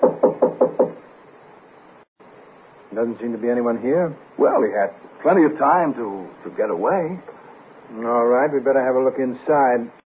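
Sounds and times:
firm knocking on a wooden door: 0.0s - 1.0s
speech: 3.0s - 10.0s.

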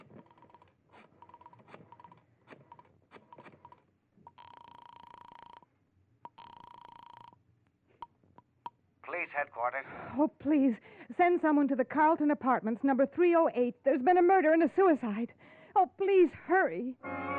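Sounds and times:
telephone being dialed: 0.0s - 5.6s
speech: 9.2s - 15.4s, 16.0s - 17.2s.

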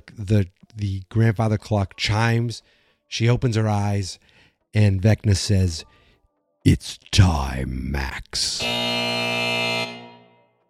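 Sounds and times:
speech: 0.2s - 6.0s, 6.6s - 9.0s
electronic buzzer marking the end of a ten-minute period: 8.6s - 10.6s.

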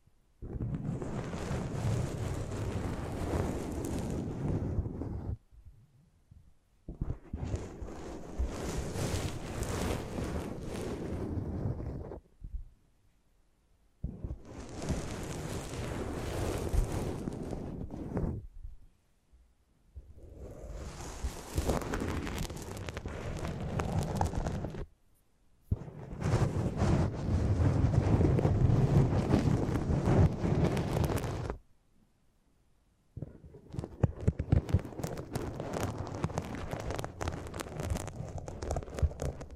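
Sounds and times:
microphone handling noise: 0.4s - 5.4s, 6.9s - 12.7s, 14.0s - 18.8s, 20.0s - 24.9s, 25.7s - 31.6s, 33.2s - 39.5s.

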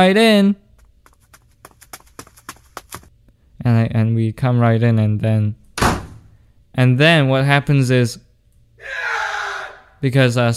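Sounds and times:
speech: 0.0s - 0.6s, 3.6s - 5.6s, 6.8s - 8.2s, 10.0s - 10.5s
hard clacking footsteps sound effect: 0.7s - 3.1s.

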